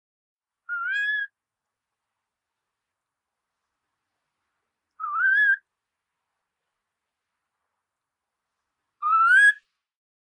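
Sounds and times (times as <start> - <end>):
Far Eastern curlew rising whistled call: 0.7 - 1.3, 5.0 - 5.6, 9.0 - 9.6.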